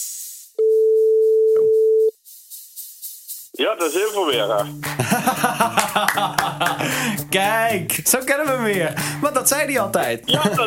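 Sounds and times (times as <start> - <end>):
telephone line tone while a call is placed: 0.6 - 2.1
speech: 3.6 - 10.6
laughter: 4.8 - 7.3, 10.3 - 10.6.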